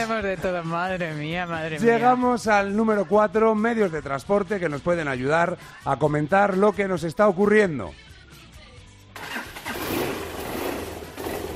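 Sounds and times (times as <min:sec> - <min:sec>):
speech: 0:00.0 - 0:08.1
motorcycle engine starting: 0:09.2 - 0:11.5.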